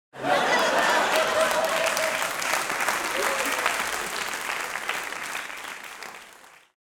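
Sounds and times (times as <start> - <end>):
laughter: 0.2 - 5.1
audience applauding: 0.2 - 6.8.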